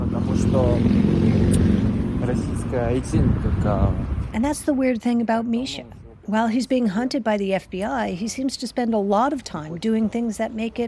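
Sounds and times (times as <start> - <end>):
motorcycle engines rumbling past on a street: 0.0 - 4.8
speech: 0.5 - 1.4, 2.3 - 10.8.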